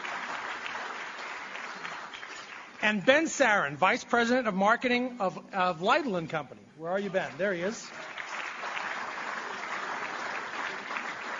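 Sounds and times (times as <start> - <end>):
audience applause: 0.0 - 2.8, 7.2 - 11.3
speech: 2.8 - 8.0.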